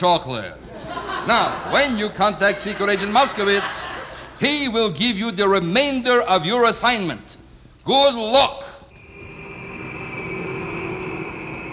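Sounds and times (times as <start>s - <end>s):
speech: 0.0s - 8.6s
laughter: 0.6s - 4.5s
airplane engine roaring while taking off: 8.9s - 11.7s.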